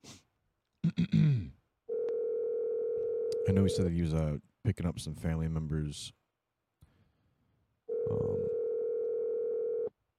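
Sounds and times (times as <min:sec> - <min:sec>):
electronic ringback tone of an outgoing phone call: 0:01.9 - 0:03.6, 0:07.9 - 0:09.9
speech: 0:03.5 - 0:06.2, 0:08.1 - 0:08.4.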